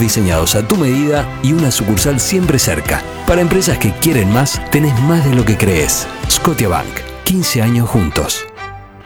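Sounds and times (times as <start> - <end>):
speech: 0.0 - 8.5
rally car engines roaring: 0.4 - 7.3.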